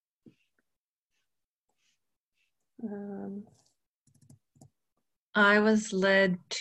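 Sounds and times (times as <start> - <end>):
person humming: 2.8 - 3.4
speech: 2.8 - 3.6, 5.4 - 6.6
typing on a computer keyboard: 4.0 - 4.7.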